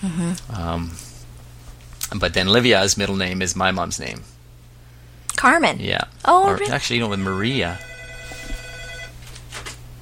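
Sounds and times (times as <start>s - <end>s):
speech: 0.0s - 1.1s, 2.1s - 4.4s, 5.4s - 7.9s
low hum: 0.0s - 10.0s
telephone ringing with an electronic trill: 6.6s - 9.4s.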